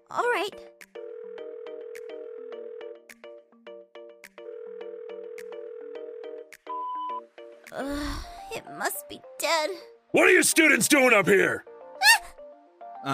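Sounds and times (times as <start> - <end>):
speech: 0.1 - 1.0, 7.8 - 11.7
phone ringing with a bright electronic ringtone melody: 0.9 - 7.3.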